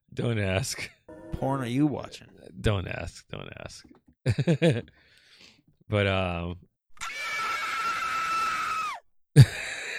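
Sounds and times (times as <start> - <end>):
speech: 0.2 - 5.1, 5.9 - 7.2
loud sustained high-pitched scream: 7.0 - 9.0.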